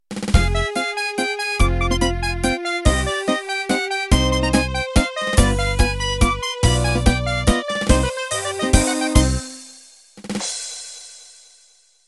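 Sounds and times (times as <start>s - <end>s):
Italian waltz intro: 0.4s - 9.7s.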